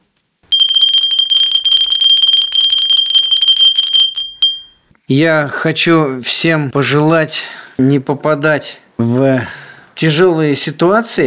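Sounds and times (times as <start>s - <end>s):
clay bell ringing: 0.5s - 4.8s
speech: 5.1s - 11.2s.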